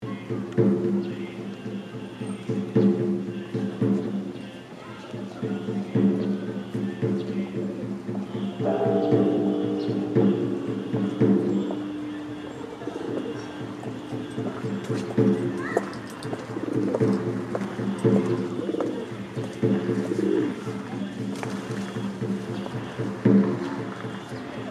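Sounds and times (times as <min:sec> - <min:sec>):
temple ambience in Osaka: 0:00.2 - 0:24.6.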